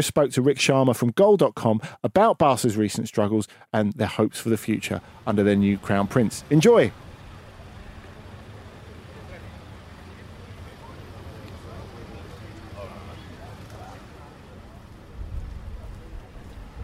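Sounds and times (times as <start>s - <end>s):
speech: 0.0s - 7.1s
steady dense rain falling at a stadium: 4.9s - 16.8s
faint indistinct voices: 6.9s - 16.8s.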